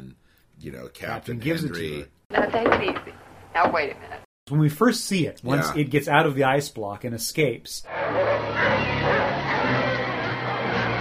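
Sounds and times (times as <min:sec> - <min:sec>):
speech: 0:00.6 - 0:08.9
sled dogs in the snow barking, yipping and whimpering while attacking a creature: 0:07.9 - 0:10.0.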